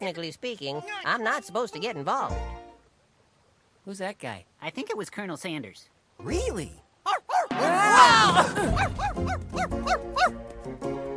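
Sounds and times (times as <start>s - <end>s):
speech: 0.0s - 2.6s, 3.8s - 11.0s
dog barking in sharp yips: 7.1s - 7.5s, 8.7s - 10.4s
laughter: 7.6s - 9.4s.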